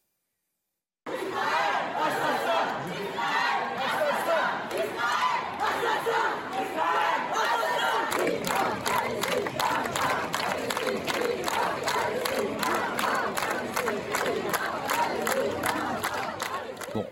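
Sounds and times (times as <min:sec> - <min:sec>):
large protest crowd chanting slogans in unison: 0:01.1 - 0:17.1
sharp rhythmic claps or beats: 0:04.6 - 0:17.1.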